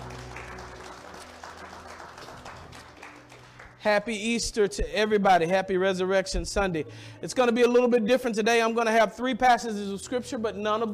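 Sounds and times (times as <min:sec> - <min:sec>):
audience applauding to welcome visitors: 0:00.0 - 0:04.1
speech: 0:03.8 - 0:10.9.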